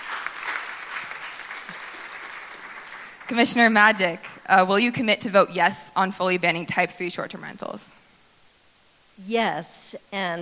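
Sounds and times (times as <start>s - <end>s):
audience applause at a city political forum: 0.0s - 4.5s
speech: 3.3s - 8.0s, 9.2s - 10.4s.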